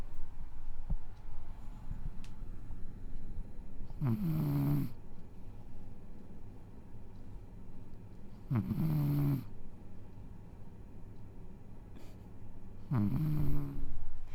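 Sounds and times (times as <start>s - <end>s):
faint steady low hum: 0.0s - 14.3s
pet cat snoring while sleeping: 4.0s - 5.0s, 8.5s - 9.5s, 12.9s - 13.9s.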